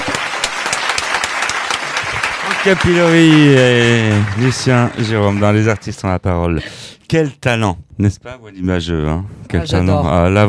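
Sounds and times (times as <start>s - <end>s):
audience applause from a crowd: 0.0s - 6.2s
speech: 2.6s - 10.4s.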